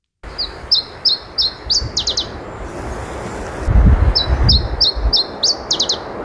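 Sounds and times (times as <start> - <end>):
Iberian chiffchaff song: 0.2 - 3.3, 4.1 - 6.2.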